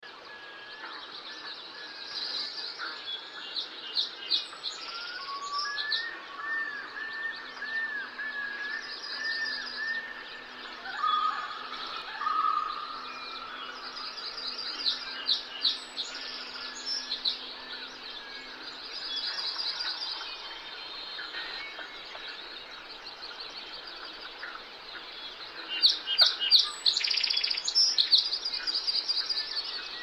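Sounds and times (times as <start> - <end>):
forest birds: 0.0 - 30.0
loons calling on a forest lake: 4.9 - 30.0.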